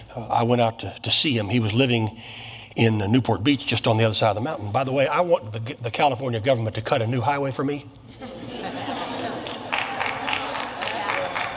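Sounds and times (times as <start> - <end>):
speech: 0.2 - 8.4
laughter: 8.1 - 11.5
audience applause: 9.0 - 11.5.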